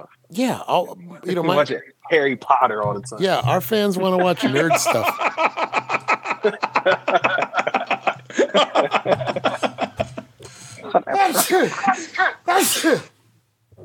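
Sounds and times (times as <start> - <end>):
speech: 0.0 - 7.6, 8.4 - 9.7, 10.9 - 13.1
people chuckling: 4.4 - 12.4
loud sneeze: 12.5 - 13.2.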